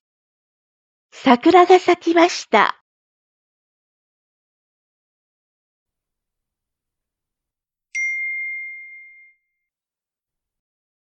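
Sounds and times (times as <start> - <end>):
speech: 1.1 - 2.8
LINE messaging app notification chime: 8.0 - 9.4.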